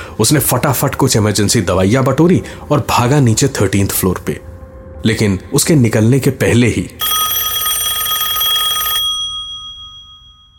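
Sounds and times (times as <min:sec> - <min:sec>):
speech: 0:00.2 - 0:07.2
landline telephone bell ringing with a call from an ambulance service: 0:07.0 - 0:10.5.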